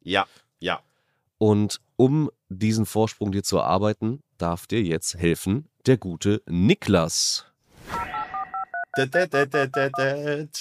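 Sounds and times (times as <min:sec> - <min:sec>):
speech: 0:00.0 - 0:08.1, 0:09.0 - 0:10.6
touch-tone telephone dialing beeps: 0:08.0 - 0:09.0.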